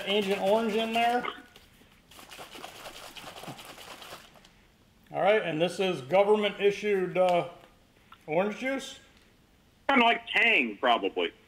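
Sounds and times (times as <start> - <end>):
water pouring from a 16.9-ounce bottle into a container: 0.0 - 1.2, 2.1 - 4.4
speech: 0.0 - 1.4, 5.1 - 7.6, 8.3 - 9.0, 9.9 - 11.4.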